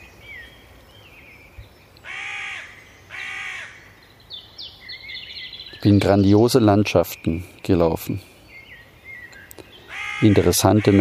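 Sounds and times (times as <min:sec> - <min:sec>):
faint chirping birds: 0:00.0 - 0:10.9
loud harsh crow caws: 0:02.0 - 0:03.9, 0:09.8 - 0:10.9
speech: 0:05.8 - 0:08.3, 0:10.2 - 0:10.9.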